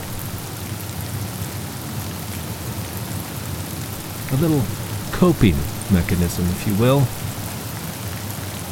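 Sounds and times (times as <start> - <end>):
steady dense rain pouring: 0.0 - 0.9, 3.8 - 8.0
speech: 4.3 - 7.2.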